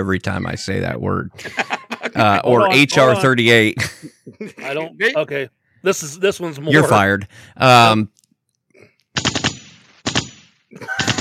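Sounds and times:
speech: 0.0s - 8.2s
laughter: 1.2s - 5.4s, 6.4s - 8.0s, 10.8s - 11.1s
automatic gunfire from a drive-by shooting: 9.2s - 11.1s.

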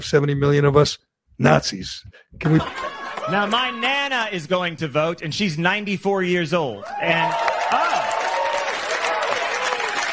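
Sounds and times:
speech: 0.0s - 8.1s
laughter: 2.4s - 4.2s
audience applause: 2.6s - 3.9s, 6.8s - 10.1s.

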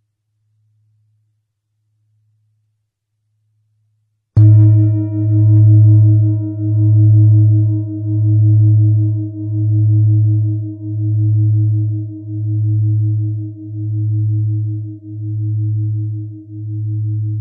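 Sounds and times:
low pulsing tone at 107.245 Hz: 4.4s - 17.4s.

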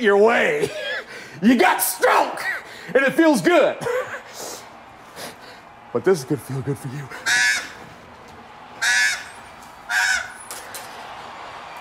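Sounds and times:
speech: 0.0s - 0.8s, 1.4s - 4.0s, 5.9s - 7.4s
laughter: 3.0s - 5.6s
crow giving loud harsh caws: 7.1s - 8.0s, 8.8s - 10.5s.

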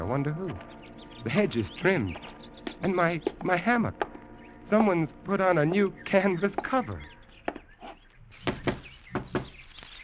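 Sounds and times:
faint chirpy ambience: 0.0s - 10.0s
speech: 0.1s - 4.1s, 4.7s - 7.1s
knocking on a door: 8.5s - 9.5s.

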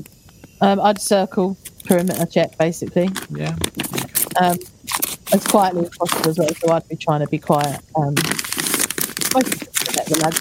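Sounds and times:
speech: 0.0s - 4.7s, 5.3s - 8.4s, 9.3s - 10.3s
plastic tobacco packet being rustled: 3.0s - 6.8s, 7.4s - 10.3s.

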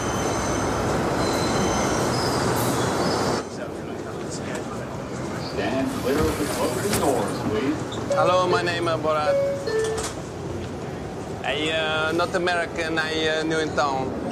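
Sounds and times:
subway car metallic wheel squeal: 0.0s - 3.4s
rumble and rattle inside a moving subway car: 0.0s - 14.3s
speech: 8.2s - 9.8s, 11.5s - 14.2s.

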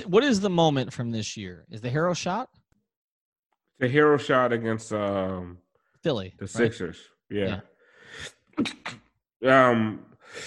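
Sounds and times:
speech: 0.0s - 2.6s, 3.8s - 10.4s
person sneezing: 8.2s - 9.1s.

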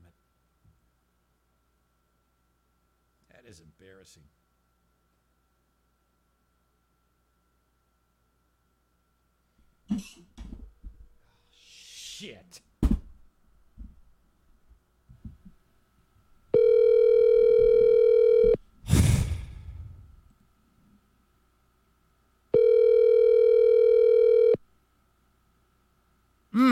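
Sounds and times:
speech: 3.5s - 4.4s, 12.2s - 12.7s
ringback tone of an outgoing telephone call ringing unanswered: 16.5s - 18.6s, 22.6s - 24.6s
brief noisy burst on a telephone line: 18.8s - 19.8s.

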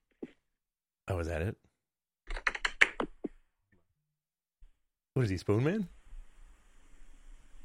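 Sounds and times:
speech: 1.1s - 1.7s, 5.2s - 6.0s
typing on a computer keyboard heard over a phone call: 2.3s - 3.0s.

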